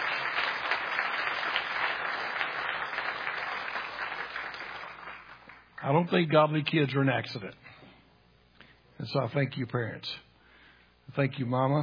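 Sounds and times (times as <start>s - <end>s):
large audience applauding for parents: 0.0s - 5.8s
speech: 5.8s - 7.6s, 9.0s - 10.3s, 11.1s - 11.8s.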